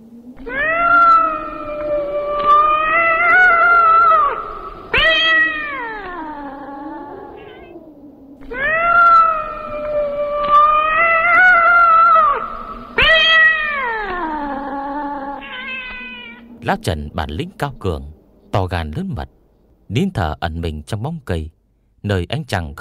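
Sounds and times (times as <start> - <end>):
speech: 0.4 - 0.6, 16.7 - 22.7
lame trembling cat wailing desperately at night: 0.4 - 16.6.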